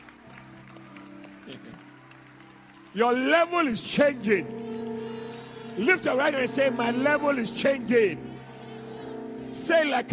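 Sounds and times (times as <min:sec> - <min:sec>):
congregation clapping: 0:00.0 - 0:06.5
speech: 0:01.5 - 0:01.9, 0:02.9 - 0:04.6, 0:05.8 - 0:08.3, 0:09.5 - 0:10.1.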